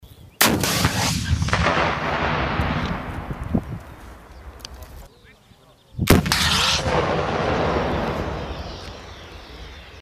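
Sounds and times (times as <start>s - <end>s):
RPG-7 rocket launcher shots: 0.4s - 3.2s, 6.1s - 8.7s.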